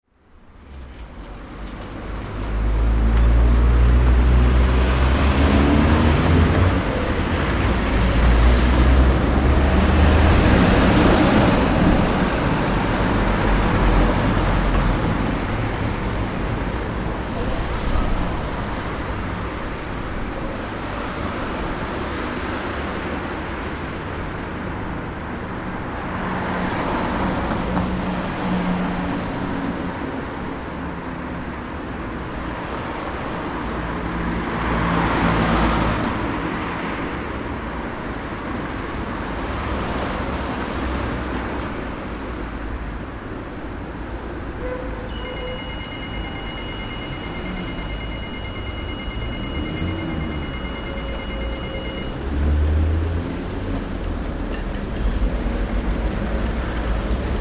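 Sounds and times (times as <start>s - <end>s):
small town road traffic: 0.0s - 57.3s
pedestrian crossing signal in background: 2.4s - 23.5s, 44.2s - 53.9s.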